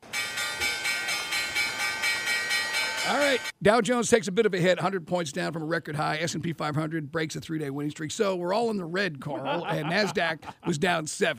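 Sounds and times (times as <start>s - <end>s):
stock exchange closing bell ringing at the end of the trading day: 0.0s - 3.6s
speech: 3.1s - 11.3s
laughter: 9.2s - 11.0s.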